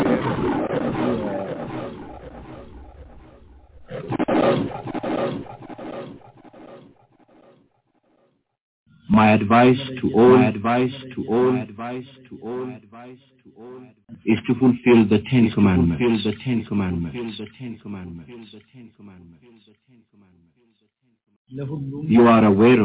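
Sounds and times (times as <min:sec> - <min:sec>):
lion roaring: 0:00.0 - 0:05.5
speech: 0:09.2 - 0:20.4, 0:21.5 - 0:22.8.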